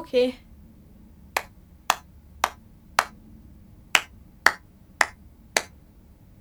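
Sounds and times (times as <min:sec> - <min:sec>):
crisp hand claps: 0:01.4 - 0:03.2, 0:04.0 - 0:05.8.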